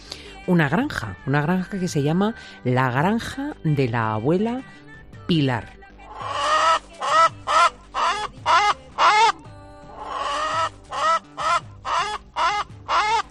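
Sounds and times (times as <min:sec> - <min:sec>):
speech: 0:00.5 - 0:05.8
free-range hens clucking on a farm in Casas de Bes, Albacete, Spain: 0:06.1 - 0:09.4, 0:10.0 - 0:13.2.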